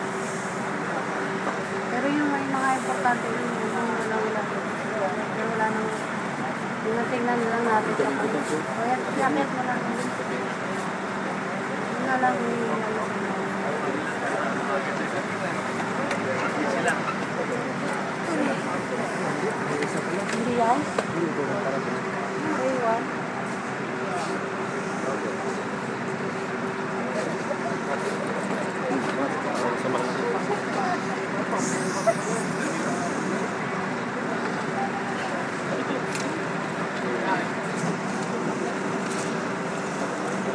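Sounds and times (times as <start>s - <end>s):
bus engine rumbling: 0.0s - 40.5s
indistinct crowd murmur: 0.0s - 40.5s
street noise: 0.0s - 40.5s
speech: 3.1s - 3.6s, 7.1s - 10.5s, 12.1s - 13.3s.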